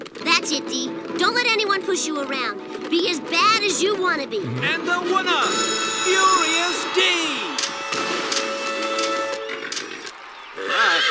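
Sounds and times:
speech: 0.5 - 7.4
racehorse that has just won a race whinnying: 4.4 - 11.0.

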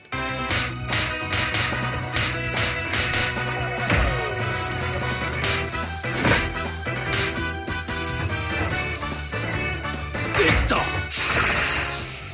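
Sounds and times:
upbeat game music track: 0.0 - 12.1
blacksmith hammer striking red-hot metal: 0.5 - 3.4, 5.4 - 7.6.

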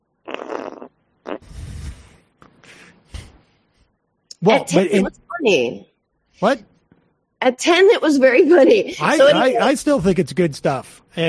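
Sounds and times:
person blowing wet buzzy mouth-fart noises as a celebrity fart impression: 0.3 - 2.2
speech: 4.4 - 6.7, 7.4 - 11.2.

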